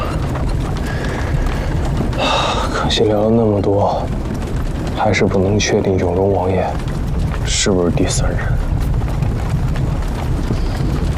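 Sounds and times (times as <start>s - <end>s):
horse hooves clip-clopping drawing a carriage: 0.0s - 11.1s
low rumble of a horse-drawn carriage: 0.0s - 11.1s
speech: 2.9s - 4.4s, 5.0s - 6.9s, 7.5s - 8.7s.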